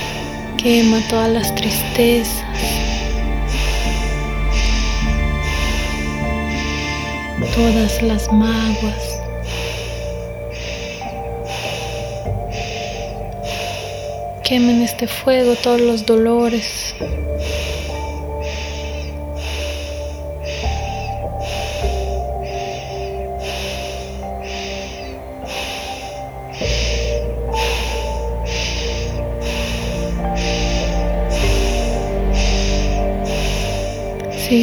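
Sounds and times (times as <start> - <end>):
droning musical shifting chords: 0.0 - 34.6
rhythmic breathing in quick even cycles: 0.0 - 34.6
speech: 0.6 - 2.8, 7.4 - 9.1, 14.5 - 17.6.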